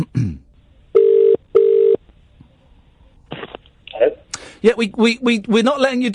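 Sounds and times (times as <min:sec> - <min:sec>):
speech: 0:00.0 - 0:00.4, 0:04.6 - 0:06.1
telephone line ringing tone: 0:01.0 - 0:02.0.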